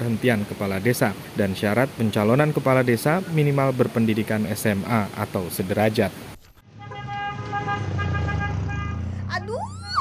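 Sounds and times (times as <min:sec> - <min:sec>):
speech: 0:00.0 - 0:06.3
low rumble of street traffic: 0:00.0 - 0:09.9
car horn honking: 0:06.7 - 0:09.2.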